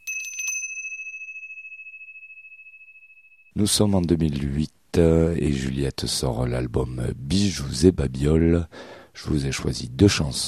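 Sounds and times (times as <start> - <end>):
small bell ringing: 0.0 - 3.6
speech: 3.6 - 10.4.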